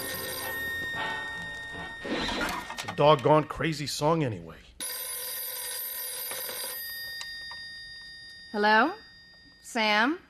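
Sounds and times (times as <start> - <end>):
telephone bell ringing: 0.0 - 3.6, 4.8 - 10.0
speech: 2.9 - 4.7, 8.5 - 9.0, 9.7 - 10.2.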